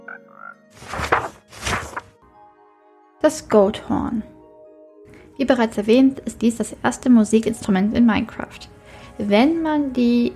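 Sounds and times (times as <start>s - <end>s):
raspy frog croaks from a video game: 0.0s - 0.6s
speech: 3.2s - 4.3s, 5.4s - 10.3s.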